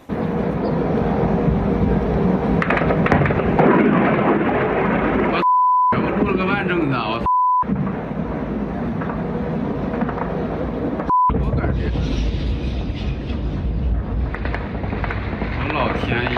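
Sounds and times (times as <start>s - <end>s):
explosion at an oil refinery after a drone strike: 0.0s - 16.3s
people talking: 5.3s - 7.3s, 11.3s - 12.2s, 15.6s - 16.3s
short high censoring beeps: 5.4s - 6.0s, 7.2s - 7.7s, 11.1s - 11.4s.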